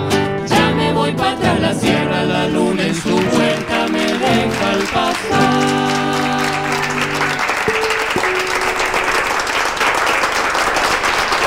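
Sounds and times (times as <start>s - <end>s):
sustained musical tones from a trio's live performance: 0.7s - 9.7s
audience applause after a trio's live music performance: 2.7s - 11.4s.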